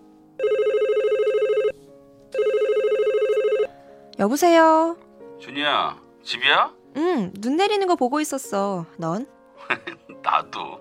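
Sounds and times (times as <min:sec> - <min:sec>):
telephone ringing in a steady electronic trill: 0:00.4 - 0:01.8, 0:02.4 - 0:03.7
speech: 0:04.2 - 0:10.7
laughter: 0:09.6 - 0:10.2.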